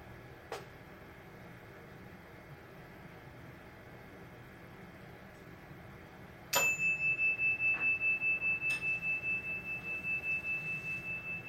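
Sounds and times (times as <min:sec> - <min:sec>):
single bell struck and ringing: 0:06.5 - 0:11.4.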